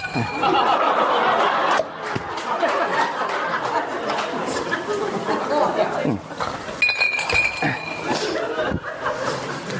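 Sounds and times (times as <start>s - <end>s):
group of people laughing: 0.0s - 6.8s, 7.4s - 9.7s
lively chatter from a group of people: 0.0s - 9.7s
wine cups clinking together in a toast: 6.4s - 8.4s.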